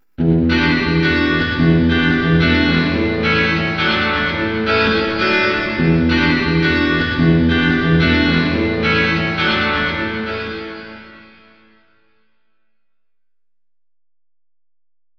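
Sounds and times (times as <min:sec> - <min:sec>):
guitar in a parking garage: 0:00.0 - 0:12.3.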